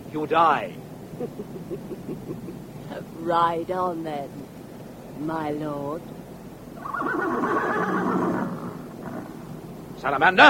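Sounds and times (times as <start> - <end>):
speech: 0.1 - 4.6, 5.2 - 6.2, 6.9 - 8.1, 10.0 - 10.4
laughter: 1.1 - 3.1
horse neighing: 6.8 - 9.5.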